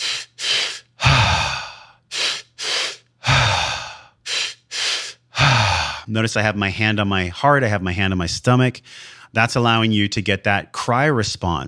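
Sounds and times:
two quick sniffing inhales in a breathing exercise: 0.0s - 6.1s
speech: 6.1s - 11.6s.

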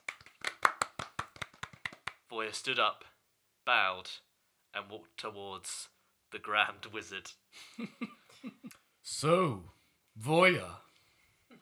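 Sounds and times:
hand clapping after a trial: 0.0s - 2.3s
speech: 2.3s - 10.8s.

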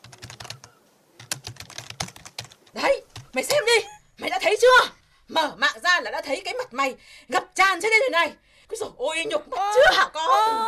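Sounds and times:
rapid typing on a computer keyboard: 0.0s - 3.6s
speech: 2.8s - 10.6s.

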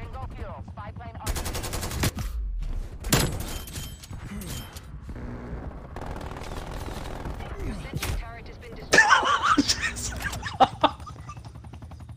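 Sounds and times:
players talking: 0.0s - 1.4s, 7.4s - 11.1s
gunfire from a gun in a video game: 0.0s - 8.9s
ongoing video game sound: 0.0s - 12.1s
players laughing: 8.9s - 11.7s.

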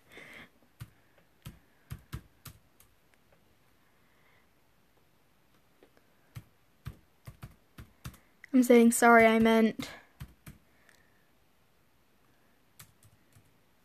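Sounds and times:
computer keyboard typing: 0.8s - 3.0s, 6.3s - 8.3s, 8.9s - 10.7s, 12.7s - 13.6s
speech: 8.6s - 10.0s.

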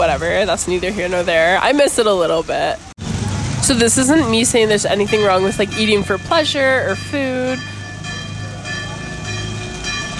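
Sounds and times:
speech: 0.1s - 2.9s, 3.7s - 7.7s
church bells ringing: 3.6s - 10.1s.

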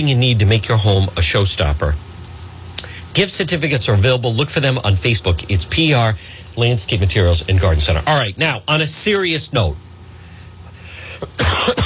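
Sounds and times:
speech: 0.0s - 2.1s, 3.2s - 9.9s, 11.2s - 11.8s
harsh coughs: 11.2s - 11.8s.

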